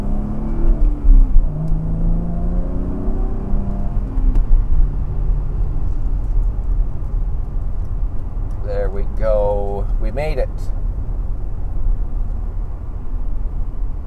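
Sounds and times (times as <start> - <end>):
car engine accelerating after shifting into second gear: 0.0 - 14.0.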